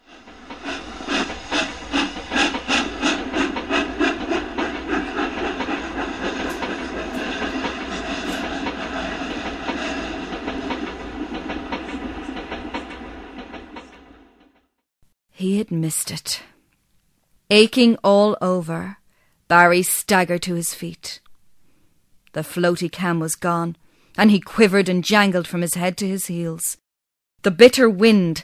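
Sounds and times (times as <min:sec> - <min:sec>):
train wheels clattering pulling out of a station: 0:00.0 - 0:14.6
speech: 0:15.7 - 0:16.5, 0:17.5 - 0:21.2, 0:22.3 - 0:26.8, 0:27.4 - 0:28.4.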